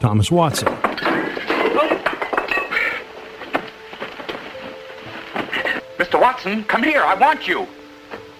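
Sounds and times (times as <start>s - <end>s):
speech: 0.0s - 1.1s, 6.2s - 7.8s
equipment knocked over and breaking while a telephone prototype is built: 0.6s - 2.9s.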